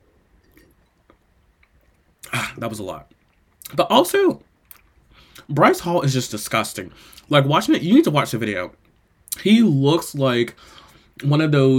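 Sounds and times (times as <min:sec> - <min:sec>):
wine sipping: 0:00.4 - 0:02.5
speech: 0:02.6 - 0:04.5, 0:05.5 - 0:08.8, 0:09.4 - 0:11.7.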